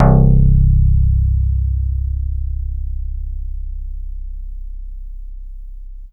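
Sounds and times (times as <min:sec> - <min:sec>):
Yamaha DX7 synth bass note C2: 0:00.0 - 0:06.1.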